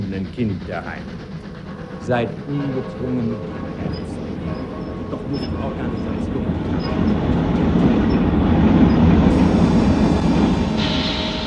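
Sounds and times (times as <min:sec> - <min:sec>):
heavy express train rumbling: 0:00.0 - 0:11.4
rushing roar of express train wheels on rails: 0:00.0 - 0:11.4
speech: 0:00.1 - 0:01.4, 0:02.0 - 0:07.4
high metallic express train brake squeal from the emergency brake: 0:02.0 - 0:09.8.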